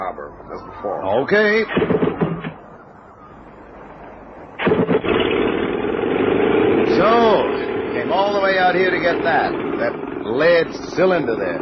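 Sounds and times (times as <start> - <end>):
speech: 0.0 - 2.2, 8.2 - 11.6
boat engine cranking and starting: 4.6 - 11.6.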